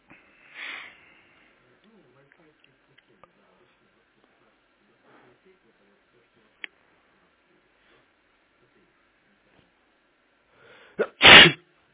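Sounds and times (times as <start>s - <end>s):
quick sharp intake of breath: 0.1s - 1.6s, 10.5s - 11.6s
loud sneeze: 11.0s - 11.6s.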